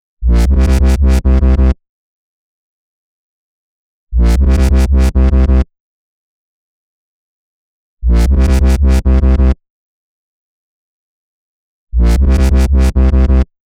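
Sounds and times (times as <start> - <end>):
bass: 0.2 - 1.8, 4.1 - 5.7, 8.0 - 9.6, 11.9 - 13.5.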